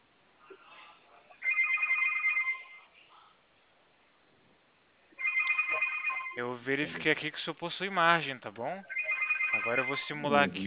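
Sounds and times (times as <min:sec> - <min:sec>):
electronic telephone ringing in the background of a phone call: 0:01.4 - 0:02.8, 0:05.2 - 0:06.5, 0:08.9 - 0:10.3
speech: 0:06.4 - 0:10.6.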